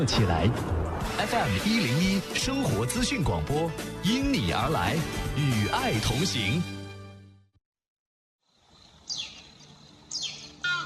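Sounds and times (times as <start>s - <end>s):
speech: 0.0s - 6.8s
soft outdoor noise: 8.4s - 10.8s
crested ibis calling: 9.1s - 10.8s.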